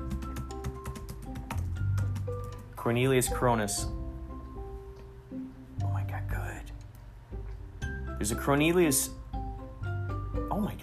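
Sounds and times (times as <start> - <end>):
typing on a computer keyboard: 0.0 - 2.7
steady low hum: 0.9 - 10.8
speech: 2.8 - 4.0, 8.2 - 9.2.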